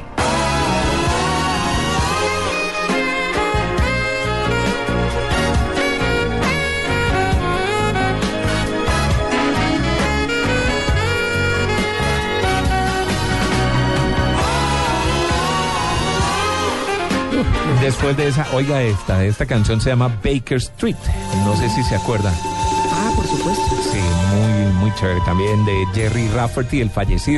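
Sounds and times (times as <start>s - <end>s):
smooth lyrical saxophone solo: 0.0s - 17.6s, 21.1s - 25.1s
full pop band with steady drums and bass: 0.0s - 20.0s, 20.8s - 27.3s
speech: 18.0s - 27.3s.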